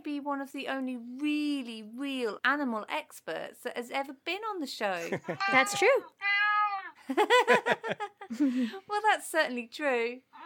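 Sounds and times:
speech: 0.2s - 6.5s, 7.1s - 10.4s
laughter: 5.0s - 5.8s, 7.1s - 8.6s
cat meowing: 5.3s - 7.0s.

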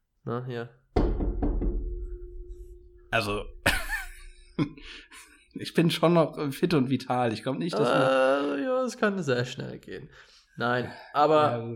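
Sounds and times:
speech: 0.2s - 1.4s, 3.1s - 3.6s, 4.6s - 11.7s
knocking on wood: 1.0s - 2.8s
laughter: 3.6s - 5.3s.

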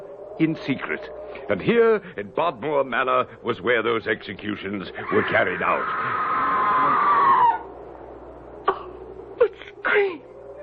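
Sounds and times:
speech: 0.4s - 6.4s
distant human scream: 5.0s - 7.7s.

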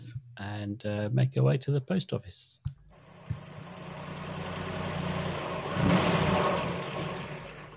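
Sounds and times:
speech: 0.4s - 2.7s
car engine idling and revving as the vehicle drives away: 3.0s - 7.7s.

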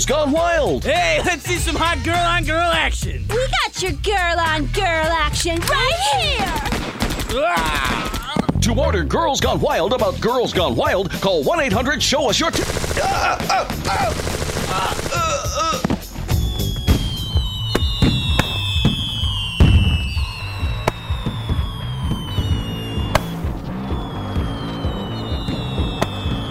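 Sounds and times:
speech: 0.0s - 15.3s
fireworks exploding: 5.7s - 8.5s, 15.8s - 26.4s
whistling rockets streaking upward: 16.2s - 26.4s.

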